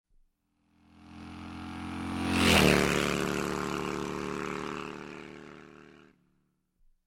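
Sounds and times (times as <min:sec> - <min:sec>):
moped engine: 0:00.7 - 0:06.3.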